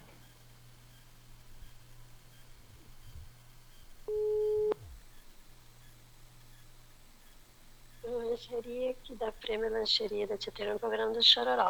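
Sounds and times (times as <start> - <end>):
low continuous hum: 0.6 - 9.8
telephone tone while dialing a number: 4.1 - 4.8
speech: 9.4 - 11.6.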